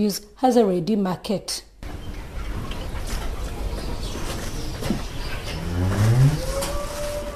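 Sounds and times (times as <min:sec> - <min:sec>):
speech: 0:00.0 - 0:01.7
steady outdoor hum: 0:01.7 - 0:07.3
dairy cow mooing on a farm: 0:05.6 - 0:07.3.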